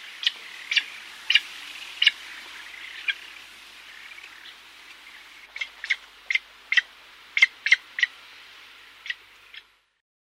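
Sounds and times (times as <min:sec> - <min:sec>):
Eurasian spoonbill Platalea leucorodia giving harsh raspy calls: 0:00.0 - 0:08.1.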